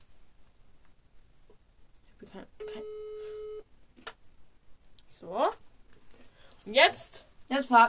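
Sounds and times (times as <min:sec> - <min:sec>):
steady electronic telephone tone while dialing: 0:02.6 - 0:03.7
speech: 0:06.7 - 0:07.8.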